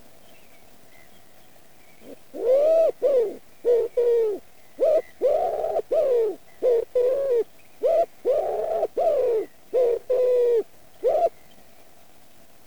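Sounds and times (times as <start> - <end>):
wood pigeon Columba palumbus calling: 2.0 - 11.4.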